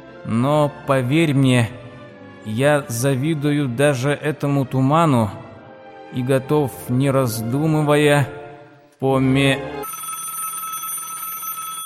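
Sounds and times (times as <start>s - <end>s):
speech: 0.2s - 1.8s, 2.4s - 5.4s, 6.1s - 8.4s, 9.0s - 9.8s
telephone ringing with a bright bell-like tone: 9.6s - 11.8s.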